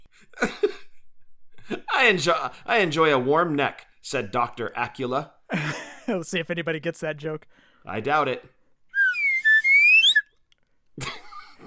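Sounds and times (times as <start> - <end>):
speech: 2.0 - 8.6
slide whistle: 8.9 - 10.3.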